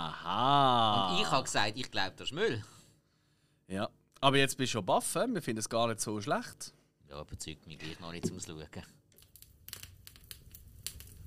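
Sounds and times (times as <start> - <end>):
speech: 0.2 - 2.8, 3.7 - 9.0
small fire being lit, crackling: 9.1 - 11.2.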